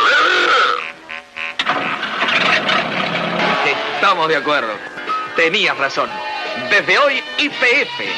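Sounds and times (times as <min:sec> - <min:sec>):
car engine cranking and starting: 0:01.5 - 0:05.4
speech: 0:04.1 - 0:08.1.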